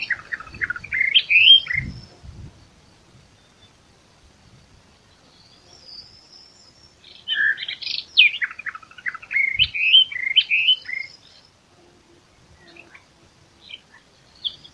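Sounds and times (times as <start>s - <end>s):
Eastern Orphean Warbler Sylvia crassirostris singing: 0.0s - 14.7s.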